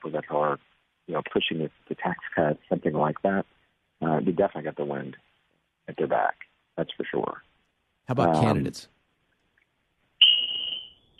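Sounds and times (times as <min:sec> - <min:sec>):
speech: 0:00.0 - 0:05.3, 0:05.9 - 0:07.5, 0:08.1 - 0:09.0
smoke alarm beeping: 0:10.2 - 0:11.1.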